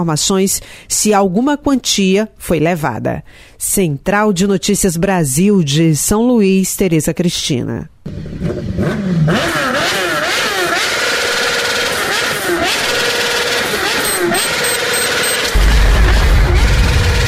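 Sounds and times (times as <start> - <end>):
speech: 0.0 - 9.6
small Pop motorcycle engine revving hard after bank agency explosion in Maranhão Brazil: 8.1 - 17.2
deep low rumble: 15.5 - 17.2.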